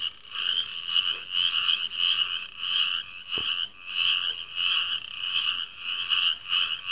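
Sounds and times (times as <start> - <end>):
dense chorus of frogs croaking at night: 0.0 - 6.9.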